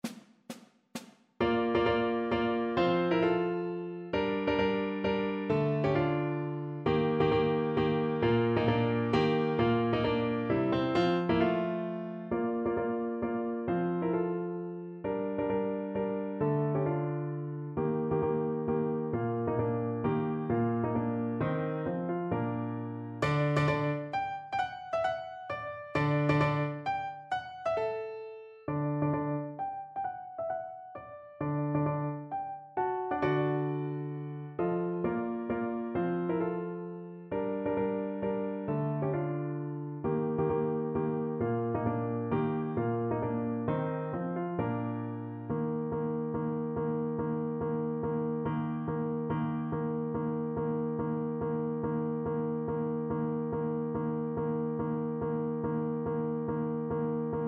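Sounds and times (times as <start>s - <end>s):
piano accompaniment for flute to a mazurka: 0.0s - 57.4s.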